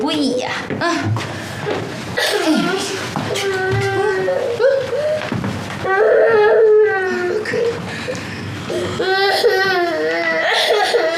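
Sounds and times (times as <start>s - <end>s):
speech: 0.1s - 3.0s
young child crying: 2.2s - 5.2s, 5.8s - 7.8s, 8.7s - 11.1s.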